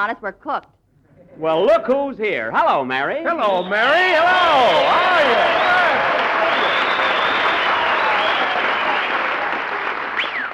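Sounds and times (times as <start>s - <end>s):
speech: 0.0s - 6.0s
sharp whistle: 3.4s - 8.8s, 10.2s - 10.5s
studio audience cheering: 3.4s - 10.5s
large studio audience applauding: 4.0s - 10.5s.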